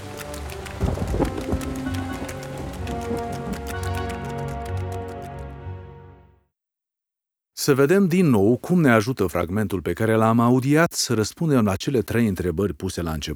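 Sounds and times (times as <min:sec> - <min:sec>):
gusting wind: 0:00.0 - 0:03.7
heavy rain pouring down: 0:00.0 - 0:05.2
speech: 0:07.6 - 0:13.3.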